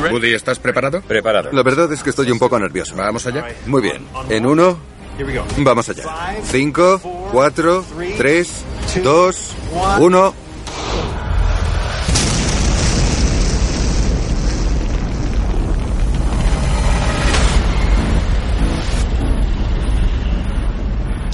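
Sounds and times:
speech: 0.0 - 11.0
large explosion with deep sustained rumble: 11.2 - 21.3.

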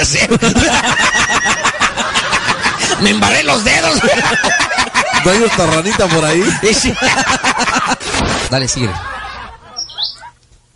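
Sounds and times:
speech: 0.0 - 0.8, 5.2 - 9.2
laughter: 0.0 - 10.4
small bird chirping: 9.8 - 10.3.

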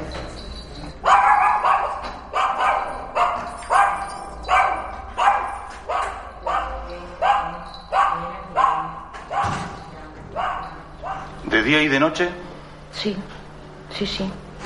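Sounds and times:
female dog barking shrilly: 1.0 - 9.7, 10.4 - 11.4
speech: 11.7 - 12.4, 13.0 - 13.3, 14.0 - 14.4.

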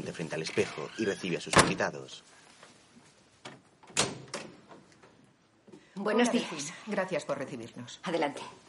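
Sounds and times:
speech: 0.2 - 2.4, 6.0 - 8.6
door being opened with mechanical clunks and a rattling thump: 3.4 - 4.8.

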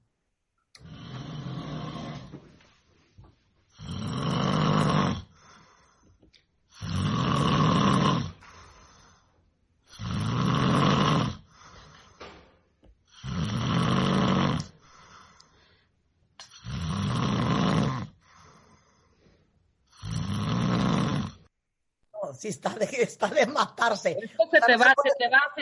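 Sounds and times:
man snoring loudly while sleeping: 0.8 - 2.4, 3.7 - 6.0, 6.7 - 8.4, 9.8 - 12.0, 13.1 - 15.6, 16.4 - 19.0, 19.9 - 21.5
speech: 22.3 - 25.5
laughter: 22.5 - 25.5.

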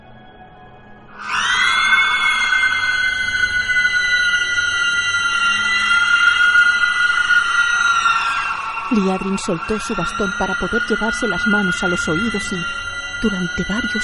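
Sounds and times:
woman's long piercing scream: 1.2 - 14.0
speech: 9.0 - 14.0.

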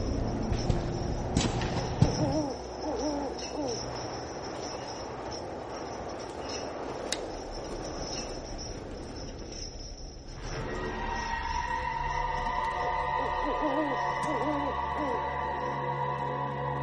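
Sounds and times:
low rumbling background: 0.0 - 16.8
owl hooting: 2.0 - 4.1, 11.8 - 15.9.

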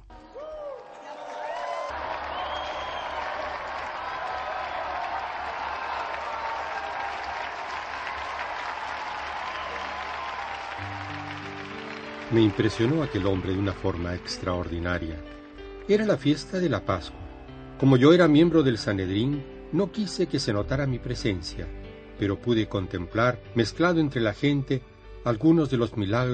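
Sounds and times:
large crowd applauding in honour of two saints: 0.0 - 18.9
faint cheers: 0.1 - 14.3, 16.8 - 18.5
speech: 12.3 - 17.2, 17.8 - 26.3.

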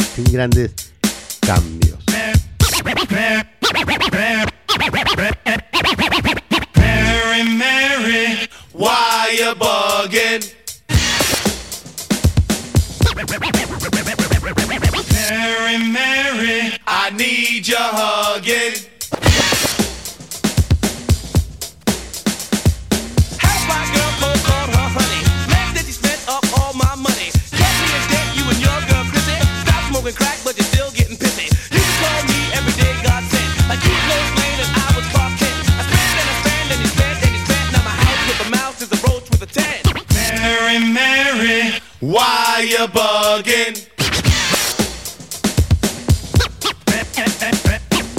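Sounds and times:
choppy turntable scratching: 0.0 - 0.8, 1.4 - 7.4, 10.9 - 11.8, 12.6 - 15.4, 19.0 - 40.9, 43.9 - 45.2, 45.9 - 48.1
loud hip-hop track with cut-up samples and punchy beat: 0.0 - 8.2, 8.8 - 12.0, 12.8 - 16.6, 17.2 - 48.1
speech: 0.2 - 0.8, 1.5 - 2.1, 2.8 - 5.6, 16.4 - 18.9, 40.7 - 43.9.

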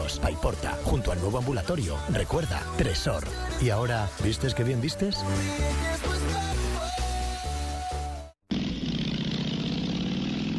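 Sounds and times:
rhythmic musical passage: 0.0 - 8.1
speech: 0.2 - 6.4
motorcycle engine revving: 8.5 - 10.5.

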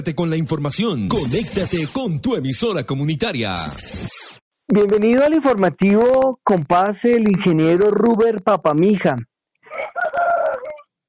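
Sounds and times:
speech: 0.0 - 4.1, 4.7 - 9.3
rooster crowing in Cauca Colombia: 9.6 - 11.0.

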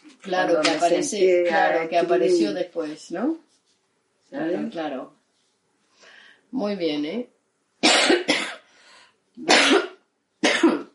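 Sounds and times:
speech: 0.2 - 3.5, 4.3 - 5.2, 6.5 - 7.3, 9.4 - 9.8
harsh coughing: 7.8 - 8.7, 9.4 - 10.9
wheezy breath: 8.7 - 9.2.

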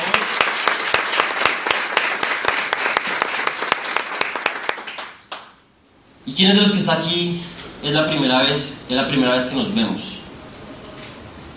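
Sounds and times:
crowd applauding: 0.0 - 5.6
sharp standout claps: 0.0 - 5.6
speech: 6.3 - 10.2.

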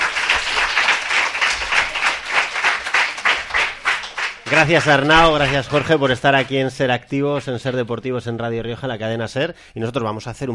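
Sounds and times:
small group clapping: 0.0 - 6.7
speech: 4.5 - 10.5.

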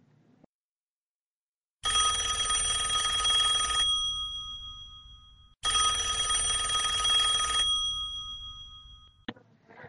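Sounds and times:
old-fashioned telephone bell ringing for incoming call: 1.8 - 9.3.

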